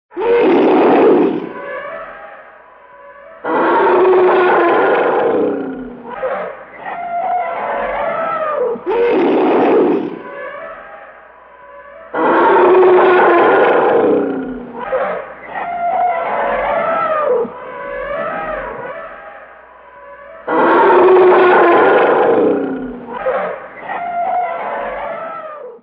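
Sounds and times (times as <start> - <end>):
angry elephant: 0.1 - 25.8.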